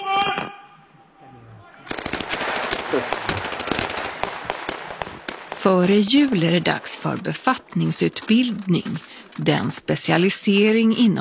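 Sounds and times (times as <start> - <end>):
person shouting: 0.0 - 1.8
rapid bursts of gunfire: 1.8 - 10.3
speech: 5.6 - 11.1.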